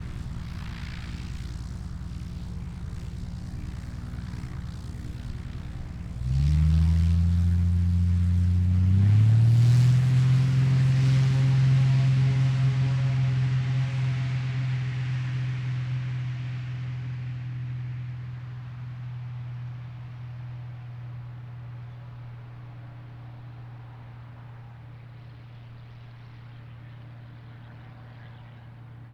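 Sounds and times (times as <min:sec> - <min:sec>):
aerobatic aircraft taking off at beginning of airstrip: 0:00.0 - 0:29.1.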